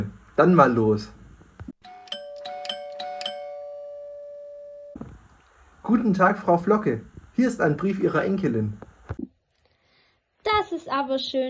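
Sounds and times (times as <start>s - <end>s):
speech: 0.0s - 1.2s, 5.9s - 8.8s, 10.8s - 11.4s
doorbell ringing with bright chimes: 1.8s - 5.0s.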